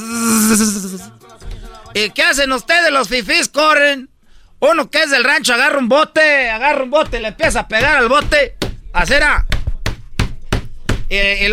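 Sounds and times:
large swarm of bees from a hive buzzing in flight: 0.0s - 1.1s
speech: 0.5s - 1.2s, 2.0s - 9.5s, 11.1s - 11.5s.

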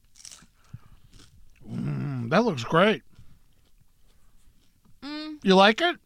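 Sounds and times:
biting into a crunchy corn taco shell: 0.0s - 2.0s
soft crackling chewing of a taco: 0.0s - 2.3s, 3.0s - 5.0s
speech: 2.3s - 3.1s, 5.4s - 6.0s.

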